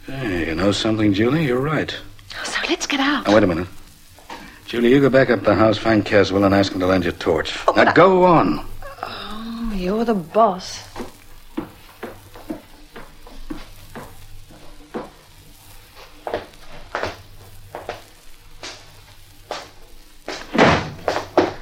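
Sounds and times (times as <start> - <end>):
speech: 0.1 - 2.1, 2.7 - 3.8, 4.7 - 8.7, 9.8 - 10.9
front door swinging closed with a solid thud: 20.5 - 21.6.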